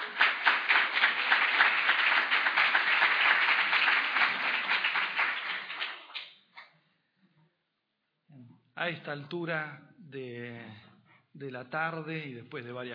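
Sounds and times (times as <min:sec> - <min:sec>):
audience applause welcoming a speaker at a conference on anxiety and depression: 0:00.0 - 0:06.4
speech: 0:08.8 - 0:12.9.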